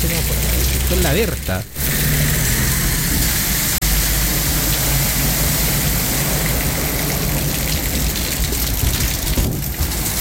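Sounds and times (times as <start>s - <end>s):
steady dense rain at night: 0.0s - 10.1s
vehicle crossing a puddle by the railway line: 0.0s - 10.1s
speech: 0.9s - 1.9s.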